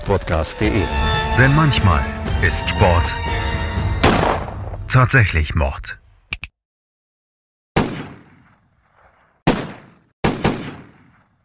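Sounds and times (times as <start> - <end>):
speech: 0.1 - 3.5, 4.9 - 6.0
gunshots: 4.0 - 4.6, 7.8 - 11.3.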